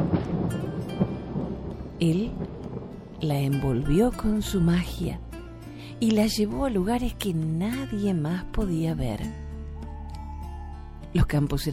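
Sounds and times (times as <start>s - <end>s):
low continuous thunder rumbling during a storm: 0.0s - 5.3s
stormy wash of rain-like noise: 0.0s - 6.0s
speech: 2.0s - 2.6s, 3.2s - 5.2s, 5.9s - 9.4s, 11.1s - 11.7s.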